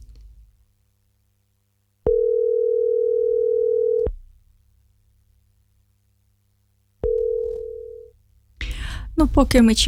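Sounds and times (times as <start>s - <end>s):
faint low hum: 0.0s - 9.8s
Viber call ringing tone: 2.1s - 4.1s, 7.0s - 8.1s
speech: 9.2s - 9.8s.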